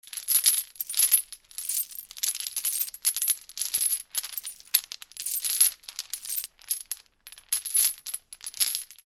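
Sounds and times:
metallic chains rattling: 0.5 - 7.0
movement sounds: 0.8 - 3.0, 4.4 - 5.6, 6.2 - 6.5.

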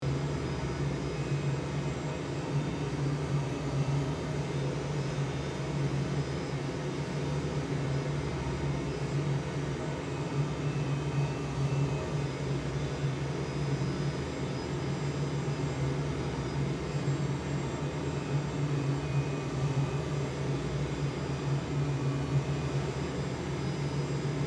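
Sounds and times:
military jet airplane in flight interior: 0.0 - 24.4.

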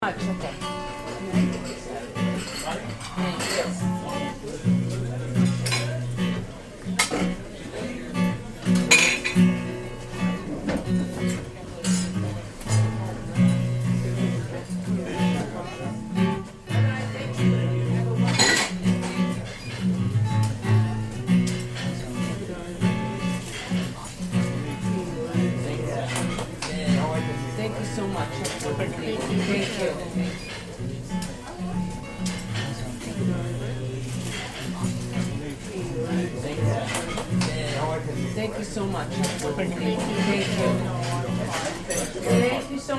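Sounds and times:
medium mixed crowd chatter in a pub: 0.0 - 42.9.

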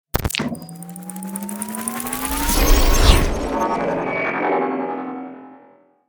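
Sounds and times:
futuristic trailer transition: 0.6 - 5.4.

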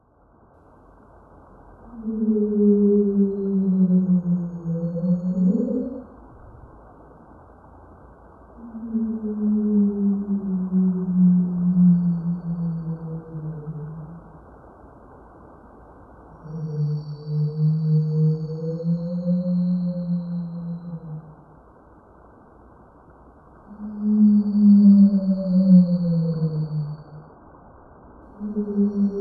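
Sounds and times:
whale call underwater: 1.9 - 6.2, 8.6 - 14.4, 16.4 - 21.5, 23.7 - 27.3, 28.4 - 29.1.

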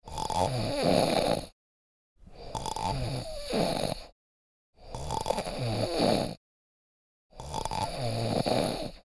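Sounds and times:
man snoring violently: 0.0 - 1.6, 2.4 - 4.2, 4.8 - 6.4, 7.3 - 9.1.

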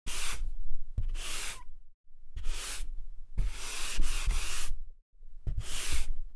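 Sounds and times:
chalk erasing on a chalkboard: 0.1 - 1.7, 2.4 - 4.8, 5.5 - 6.2.

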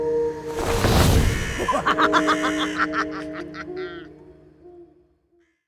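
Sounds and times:
Halloween spooky whoosh transition: 0.2 - 3.0
laughter: 1.6 - 4.1.

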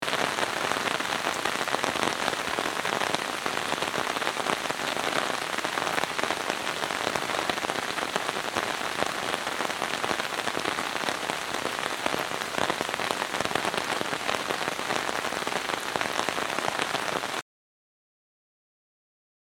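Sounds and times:
heavy rain on umbrella in thunderstorm: 0.0 - 17.4.

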